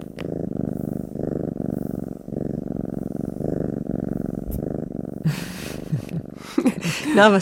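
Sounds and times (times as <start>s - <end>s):
male domestic cat purring: 0.0s - 7.4s
speech: 6.8s - 7.4s.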